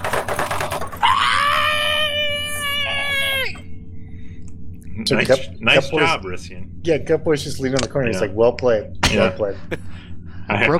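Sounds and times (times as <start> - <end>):
voice imitating a woman's muffled screaming behind a shut door: 0.9 - 3.6
speech: 5.0 - 10.7.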